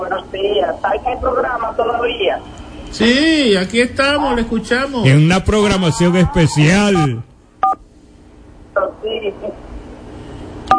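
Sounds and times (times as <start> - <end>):
speech: 0.1 - 7.3
touch-tone beeps of a phone number dialed on a line with poor signal: 7.0 - 7.8.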